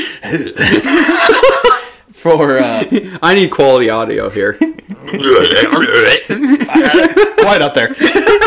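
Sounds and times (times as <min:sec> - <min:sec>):
laughter: 0:00.2 - 0:03.2, 0:04.3 - 0:08.4
speech: 0:00.2 - 0:08.4
loud croaky burp with gurgling tail: 0:05.0 - 0:06.4.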